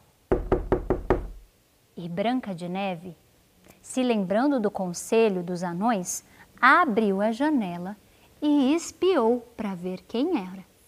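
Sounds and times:
knocking on a wooden door: 0.3s - 1.5s
speech: 2.0s - 3.2s, 3.8s - 10.7s.

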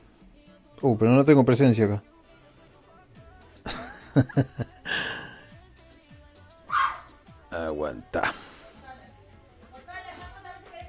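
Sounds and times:
speech: 0.8s - 2.1s, 4.2s - 4.8s, 7.6s - 8.4s
laughter: 3.7s - 5.4s
dog barking: 6.7s - 7.1s.

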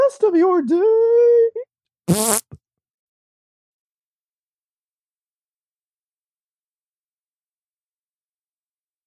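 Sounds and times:
speech: 0.1s - 2.4s
raspberry blown with the lips: 2.1s - 2.6s.

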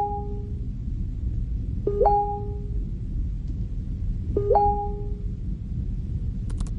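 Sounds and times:
low steady hum: 0.0s - 6.7s
two-tone chat message notification chimes from a computer: 1.9s - 2.6s, 4.4s - 5.1s.

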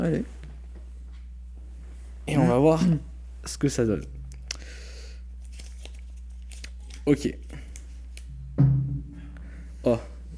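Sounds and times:
speech: 0.0s - 0.4s, 2.3s - 4.2s, 7.1s - 7.5s, 9.8s - 10.1s
small drawn slip of paper crinkling as it is unfolded: 5.3s - 8.3s.

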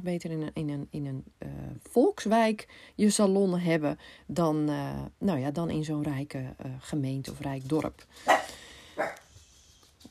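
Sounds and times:
speech: 0.0s - 9.2s
dog barking at someone entering: 8.2s - 9.3s.

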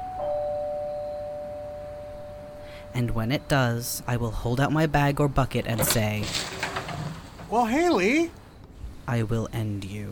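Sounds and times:
two-tone doorbell chime: 0.0s - 2.9s
speech: 2.9s - 6.7s, 7.5s - 8.4s, 9.1s - 10.1s.

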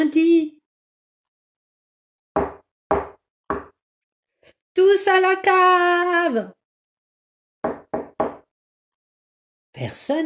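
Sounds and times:
firm knocking on a door: 2.4s - 3.8s, 7.6s - 8.5s
speech: 4.8s - 6.6s, 9.8s - 10.2s.

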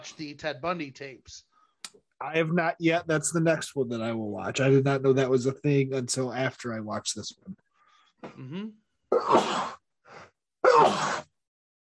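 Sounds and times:
speech: 0.0s - 7.6s, 8.2s - 9.8s, 10.8s - 11.2s
person breathing: 1.5s - 1.8s, 7.7s - 8.2s
person sneezing: 9.1s - 9.8s, 10.6s - 11.3s.

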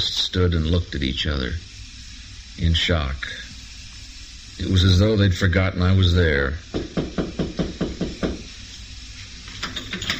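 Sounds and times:
speech: 0.0s - 1.7s, 2.6s - 3.4s, 4.6s - 7.0s
faint hiss: 0.0s - 10.1s
solid knocks on a door: 6.7s - 8.5s.

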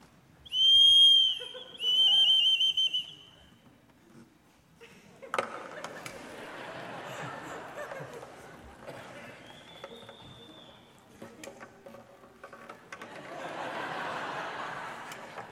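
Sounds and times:
shrill whistle replicating a bird mating call: 0.5s - 3.4s, 9.4s - 10.9s
laughter: 1.4s - 2.5s, 4.8s - 10.6s, 12.9s - 15.5s.

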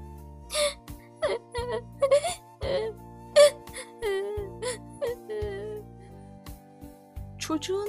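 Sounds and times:
child crying in sobbing bursts: 0.5s - 5.9s.

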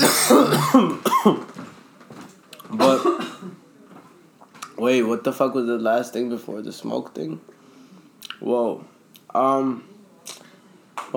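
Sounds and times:
harsh throaty coughing: 0.0s - 1.4s, 2.8s - 3.6s
raspy throat clearing: 0.0s - 1.4s
speech: 0.7s - 1.5s, 4.9s - 7.6s, 8.4s - 9.9s.

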